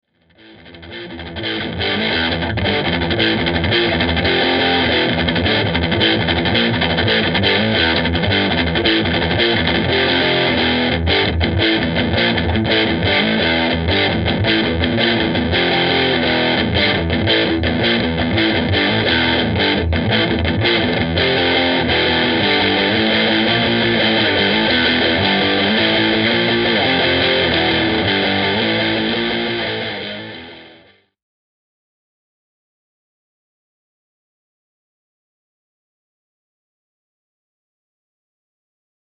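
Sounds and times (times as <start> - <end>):
distorted sound: 1.1 - 30.9.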